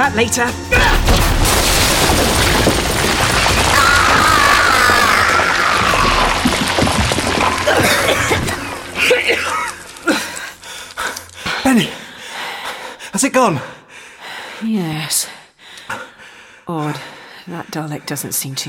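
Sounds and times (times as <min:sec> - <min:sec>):
speech: 0:00.1 - 0:01.3, 0:02.0 - 0:02.4, 0:13.2 - 0:13.8, 0:14.6 - 0:15.3, 0:16.7 - 0:18.6
sharp crashes of debris: 0:00.8 - 0:09.1
roof collapsing from gunfire, crashing roar of debris: 0:00.8 - 0:10.1.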